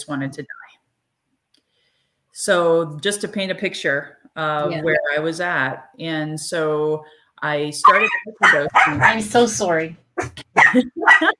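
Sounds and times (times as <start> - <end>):
speech: 0.0 - 0.8, 2.4 - 11.3
puppy whimpering and yipping with high whiny cries: 7.9 - 9.0.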